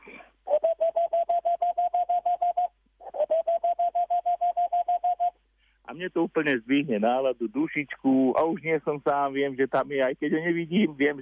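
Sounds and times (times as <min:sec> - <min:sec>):
owl hooting at night: 0:00.1 - 0:05.4
speech: 0:06.0 - 0:11.1.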